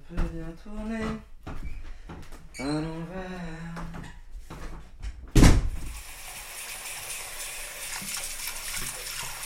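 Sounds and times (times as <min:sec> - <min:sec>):
speech: 0:00.1 - 0:01.7, 0:02.6 - 0:03.6
water splashing in a bathtub: 0:05.8 - 0:09.4
water lapping and sloshing in a bathtub: 0:07.8 - 0:09.4.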